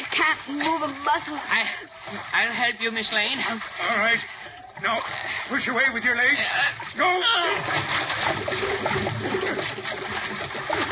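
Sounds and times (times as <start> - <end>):
churning and splashing water from a sinking boat: 0.0 - 10.8
speech: 0.2 - 10.8.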